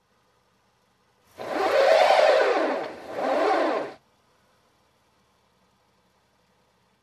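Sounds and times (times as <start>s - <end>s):
truck winch: 1.4s - 4.0s.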